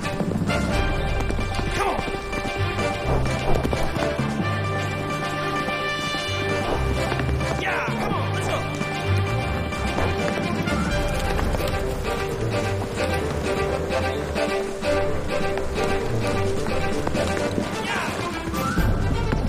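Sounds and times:
black horse hooves galloping through trees: 0.0 - 19.4.

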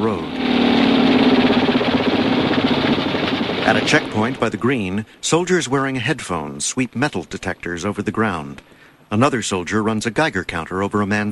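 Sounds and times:
speech: 0.0 - 0.3, 3.7 - 11.3
military trucks and motorcycle escorts driving on a village road: 0.0 - 5.1.

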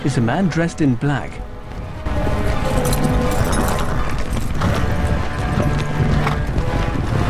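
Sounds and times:
speech: 0.0 - 1.5
horses with mounted men galloping into a village: 1.4 - 7.2.

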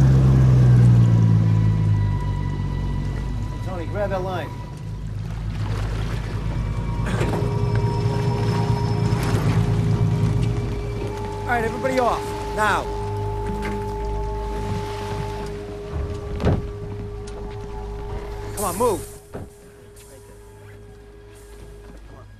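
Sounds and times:
fishing boat engine droning while pulling alongside another boat: 0.0 - 22.3
speech: 11.6 - 13.0, 18.6 - 19.1
man calling out: 18.6 - 19.1.

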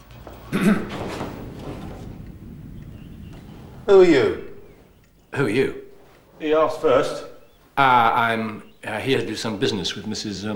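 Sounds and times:
person coughing politely: 0.5 - 1.0
speech: 0.5 - 1.1, 3.9 - 4.4, 5.3 - 5.8, 6.4 - 10.5.

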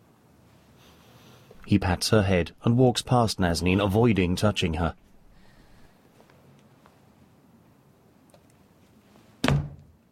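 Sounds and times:
speech: 1.7 - 5.0
door shutting with a solid thunk: 9.4 - 9.9.

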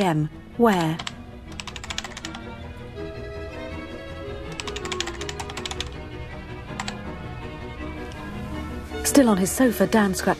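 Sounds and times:
speech: 0.0 - 1.1, 9.1 - 10.3
steady sound: 0.0 - 10.3
typing on a computer keyboard: 0.8 - 2.4, 4.5 - 6.0, 6.7 - 7.0.

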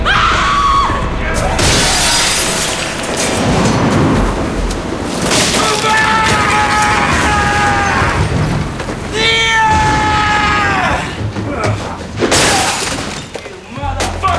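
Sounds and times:
rumbling impact noise: 0.0 - 13.4
glass window smashed with a hammer: 1.6 - 10.5, 12.2 - 13.5.

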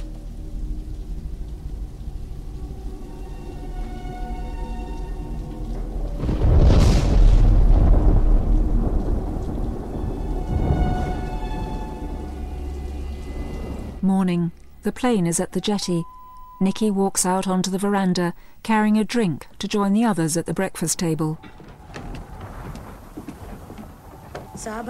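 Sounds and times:
deep thunder rolling: 0.0 - 14.8, 21.0 - 24.8
rain lashing a window during a thunderstorm: 0.0 - 14.9, 21.4 - 24.8
speech: 14.1 - 21.7, 24.6 - 24.8.

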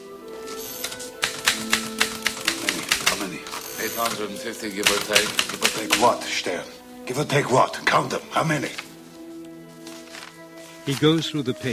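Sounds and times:
typewriter typing names onto a list: 0.6 - 6.2
speech: 4.0 - 8.8, 10.9 - 11.7.

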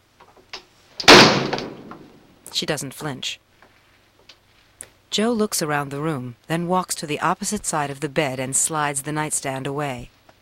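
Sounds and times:
interior door shoved closed with a slam: 1.0 - 2.2
speech: 2.6 - 3.5, 5.2 - 10.2
faint shuffling and handling sounds: 3.6 - 5.0.

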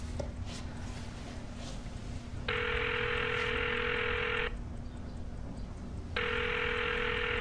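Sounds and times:
faint constant hum: 0.0 - 7.3
phone ringback tone while a call waits to connect: 2.5 - 4.6, 6.2 - 7.3.

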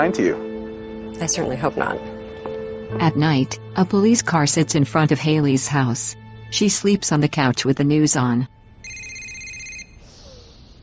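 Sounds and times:
speech: 0.0 - 0.5, 1.1 - 2.1, 2.9 - 8.6
phone on a coffee table ringing with a bright electronic tone: 8.8 - 10.0.

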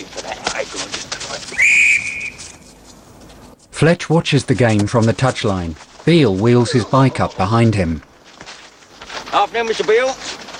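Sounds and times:
low noise: 0.0 - 10.5
referee's whistle blown for a foul in a football match: 1.5 - 2.7
speech: 3.8 - 8.1, 9.5 - 10.4.

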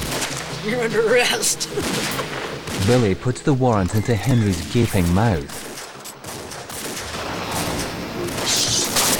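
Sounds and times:
speech: 0.6 - 5.6
dense gunfire as riders shoot their weapons: 1.8 - 3.2, 5.5 - 9.1.

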